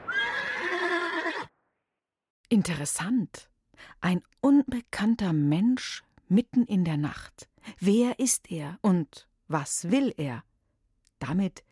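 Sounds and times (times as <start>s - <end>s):
horse neighing: 0.0s - 1.5s
speech: 2.5s - 10.5s, 11.2s - 11.7s.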